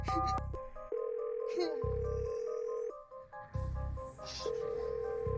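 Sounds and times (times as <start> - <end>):
phone dialing and ringing tones of an emergency call: 0.1 - 3.0, 4.4 - 5.3.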